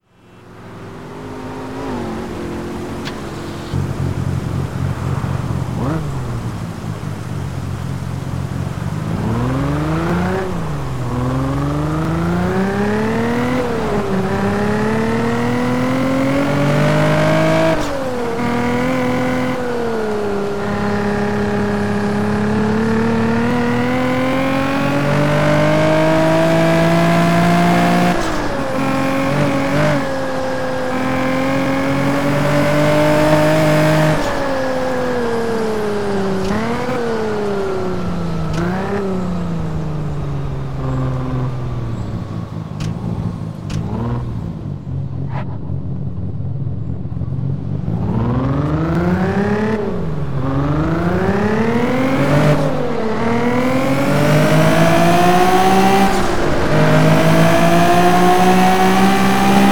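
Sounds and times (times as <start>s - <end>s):
Toyota Mark 2 JZX90 engine: 0.0s - 59.7s.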